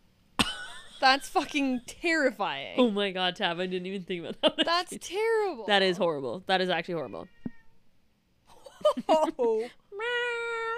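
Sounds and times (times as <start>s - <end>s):
speech: 1.0s - 7.4s, 8.9s - 10.1s
cat meowing: 7.0s - 7.8s.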